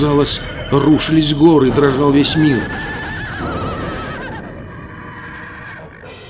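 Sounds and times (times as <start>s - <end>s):
speech: 0.0s - 3.0s
horse in a cave neighing wildly: 1.9s - 6.2s.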